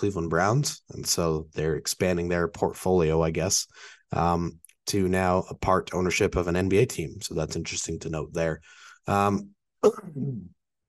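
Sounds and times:
speech: 0.0s - 10.6s
person humming: 9.8s - 10.5s
sharp throat clearing with low rumbling grunt: 9.8s - 10.5s.

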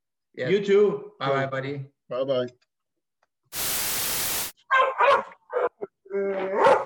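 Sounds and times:
speech: 0.4s - 2.6s
harsh static: 3.5s - 4.5s
dog barking: 4.6s - 5.9s, 6.5s - 6.8s.

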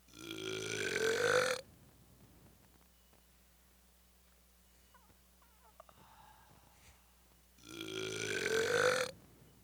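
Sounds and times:
faint noise: 0.0s - 9.6s
long loud burps: 0.1s - 1.6s, 7.6s - 9.1s.

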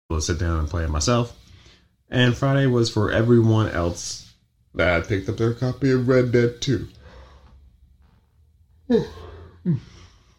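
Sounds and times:
speech: 0.1s - 1.4s, 2.1s - 7.0s, 8.9s - 10.0s
short voiced yawns: 8.8s - 10.3s.

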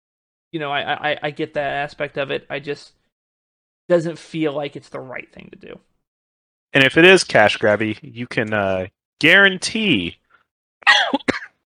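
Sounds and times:
speech: 0.5s - 3.0s, 3.9s - 5.9s, 6.7s - 10.2s, 10.8s - 11.4s
person coughing: 10.8s - 11.6s.

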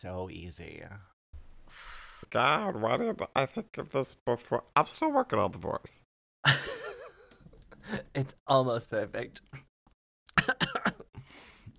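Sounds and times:
speech: 0.0s - 6.7s, 7.8s - 9.7s
breathy rasping exhale: 1.7s - 2.3s
person coughing: 10.4s - 11.2s.

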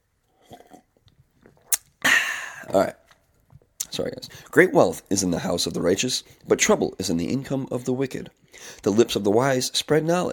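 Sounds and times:
person sipping hot green tea: 0.2s - 2.8s
breathy burst: 2.0s - 2.7s
speech: 2.7s - 3.0s, 4.0s - 10.3s.

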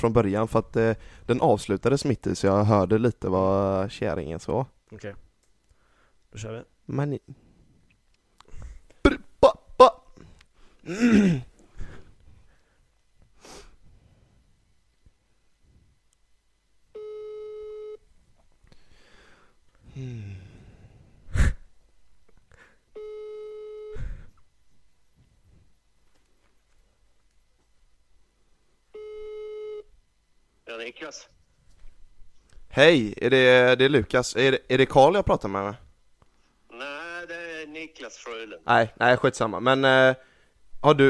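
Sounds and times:
speech: 0.0s - 5.2s, 6.3s - 7.4s, 10.8s - 11.5s, 30.8s - 31.4s, 32.7s - 35.8s, 37.6s - 41.0s
telephone ringback tone while placing a call: 17.0s - 18.0s, 23.0s - 24.0s, 29.0s - 29.9s
breathy vocal noises: 19.8s - 21.7s.

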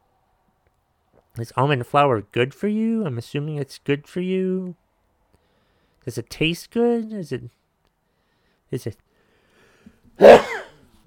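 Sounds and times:
speech: 1.4s - 4.8s, 6.0s - 7.6s, 8.7s - 9.0s, 10.2s - 10.5s
loud sneeze: 10.2s - 10.8s.

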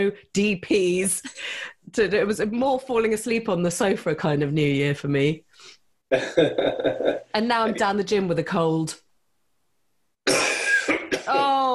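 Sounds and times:
speech: 0.0s - 9.0s
harsh cough: 6.1s - 7.2s, 10.2s - 11.7s
throat clearing: 6.1s - 7.2s, 10.3s - 11.7s
laughter: 6.1s - 7.8s.

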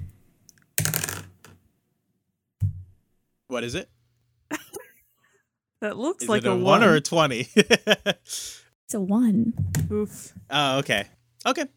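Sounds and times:
new dice clattering and tumbling across a hard tabletop: 0.8s - 1.6s
speech: 3.5s - 4.0s, 5.8s - 11.7s
laughter: 6.4s - 8.3s.

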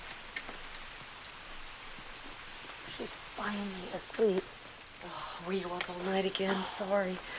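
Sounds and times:
steady rain falling: 0.0s - 7.3s
speech: 3.0s - 7.3s.

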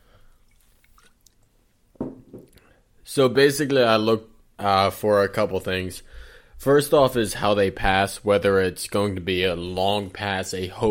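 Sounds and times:
person sipping beer: 0.0s - 1.8s
slurp and gulp of beer: 0.2s - 1.6s
speech: 3.1s - 10.8s.

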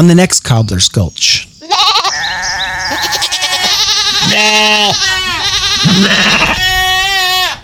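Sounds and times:
speech: 0.0s - 1.5s, 2.9s - 3.4s, 4.3s - 6.8s
goats bleating: 1.6s - 7.6s.

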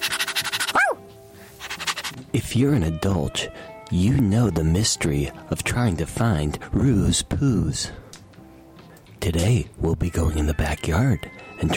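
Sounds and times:
puppy yipping: 0.1s - 1.0s
speech: 2.3s - 8.1s, 9.2s - 11.7s.

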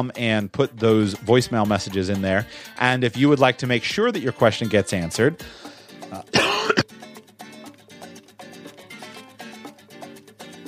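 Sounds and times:
speech: 0.0s - 6.4s
person coughing: 6.1s - 6.9s.

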